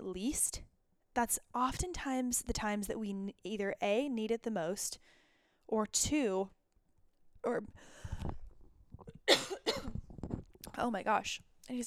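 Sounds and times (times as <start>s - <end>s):
speech: 0.1s - 6.6s, 7.4s - 8.3s, 10.8s - 11.8s
sharp coughs: 9.3s - 10.0s.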